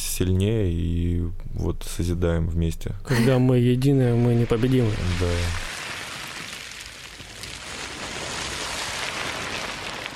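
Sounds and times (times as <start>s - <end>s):
speech: 0.2s - 5.7s
rustling plastic beach waste swirled to imitate ocean surf: 4.4s - 10.1s.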